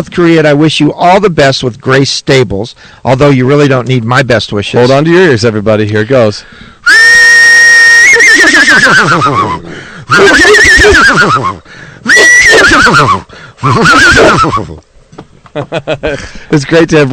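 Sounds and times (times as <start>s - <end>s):
speech: 0.0s - 7.0s, 8.4s - 14.9s, 15.6s - 17.1s
person imitating a horse whinny with the voice: 6.8s - 14.8s
laughter: 8.8s - 10.4s, 15.5s - 16.4s.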